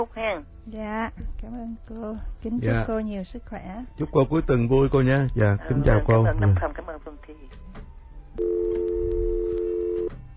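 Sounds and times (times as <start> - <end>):
speech: 0.0 - 8.9
telephone line tone from a dropped call on a call-in line: 8.4 - 10.2.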